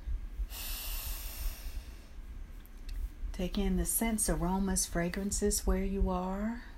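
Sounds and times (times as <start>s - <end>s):
deep inhale through the nose: 0.4s - 2.2s
speech: 3.4s - 6.7s.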